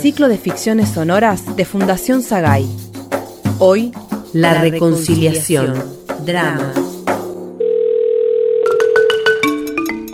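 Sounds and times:
speech: 0.0 - 2.9, 3.6 - 6.9
telephone dial tone: 7.6 - 9.2.

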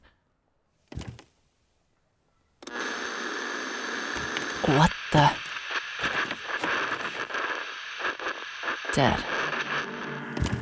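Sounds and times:
radio static while scanning dead frequencies: 2.7 - 10.6
speech: 4.7 - 5.4, 9.0 - 9.4.

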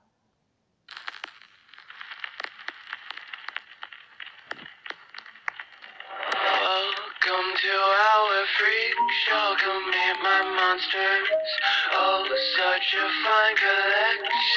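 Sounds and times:
clicks and crackles: 0.9 - 7.6
loud hypnotic song with thin radio-like tone: 4.5 - 14.5
speech: 8.5 - 14.5.

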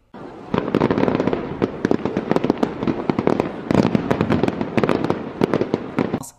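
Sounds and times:
fireworks exploding and crackling: 0.1 - 6.3.

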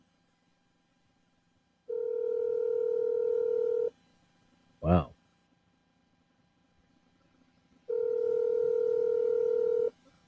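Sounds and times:
telephone ringback tone from an unanswered call: 1.9 - 3.9, 7.9 - 9.9.

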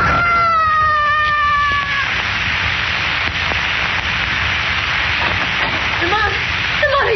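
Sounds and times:
man screaming as he falls: 0.0 - 2.2
steady static-like rushing noise: 0.0 - 7.1.

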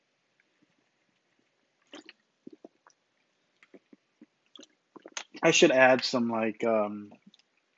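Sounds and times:
person gulping water: 1.8 - 3.0, 3.6 - 5.4
speech: 5.4 - 7.2.

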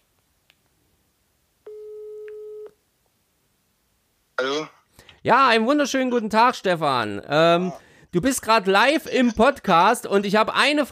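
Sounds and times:
electronic ringback tone from a phone on speaker: 1.7 - 2.8
speech: 4.4 - 10.9.

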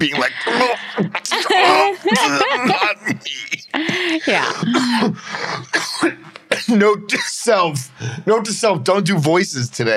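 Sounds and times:
laughter: 0.0 - 5.7
speech: 0.0 - 5.7, 6.7 - 9.9
man coughing raspy exaggerated coughs: 0.0 - 7.5.

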